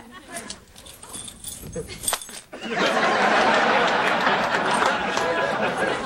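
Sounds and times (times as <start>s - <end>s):
loud continuous metallic rattling rustle: 0.3s - 2.5s
Mercedes car keys jingling as they are handed over: 0.4s - 2.5s
laughter: 1.8s - 6.0s.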